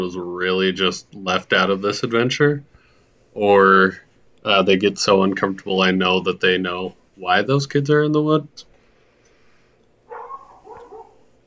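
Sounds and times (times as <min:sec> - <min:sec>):
speech: 0:00.0 - 0:02.7, 0:03.4 - 0:08.7
dog barking and yelping: 0:10.1 - 0:11.3.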